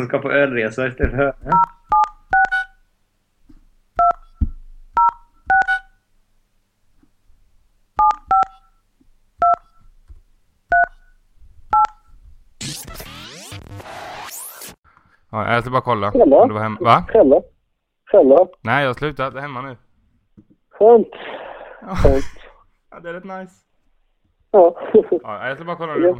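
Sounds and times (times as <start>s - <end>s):
speech: 0.0s - 1.8s, 15.4s - 17.5s, 18.2s - 19.8s, 20.8s - 22.4s, 23.0s - 23.7s, 24.5s - 26.1s
touch-tone phone keypad beeps: 1.5s - 2.8s, 4.0s - 5.9s, 8.0s - 8.8s, 9.4s - 9.8s, 10.7s - 11.1s, 11.7s - 12.1s.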